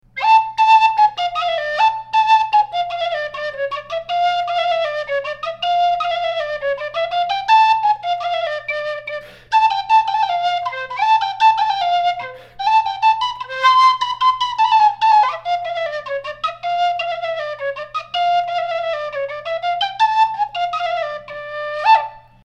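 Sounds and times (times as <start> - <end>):
handmade Ukrainian national pipe Soloveyko flute: 0.0 - 22.4.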